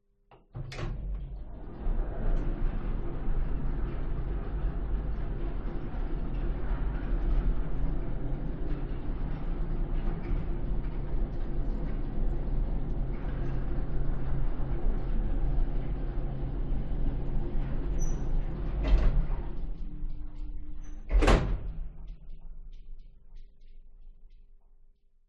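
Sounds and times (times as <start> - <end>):
industrial elevator running heard from interior: 0.6 - 23.4.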